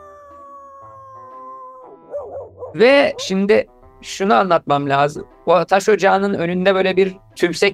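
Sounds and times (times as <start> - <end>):
distant howling of dogs or wolves around sunrise: 0.0 - 3.6
speech: 2.5 - 7.7.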